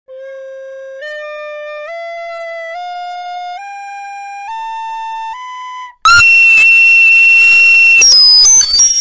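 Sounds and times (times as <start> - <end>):
loud distorted recorder: 6.1 - 8.9.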